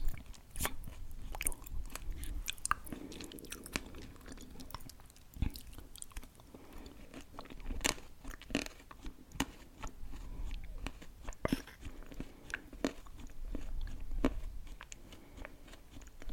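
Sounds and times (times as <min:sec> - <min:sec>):
low humming mouth noises: 0:00.0 - 0:06.5, 0:10.0 - 0:12.1
crunchy chewing and biting: 0:00.0 - 0:16.3.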